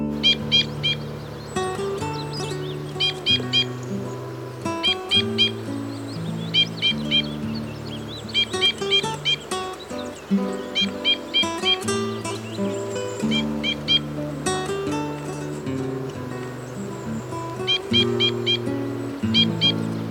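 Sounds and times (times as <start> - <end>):
low droning background: 0.1 - 20.1
two-barred crossbill chip calls: 0.1 - 20.1.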